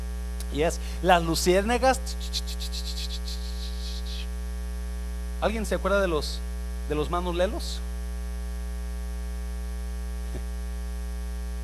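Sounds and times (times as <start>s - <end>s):
constant low electrical hum: 0.0s - 11.6s
speech: 0.5s - 2.8s, 5.4s - 7.9s
crickets chirping at night: 0.5s - 4.5s.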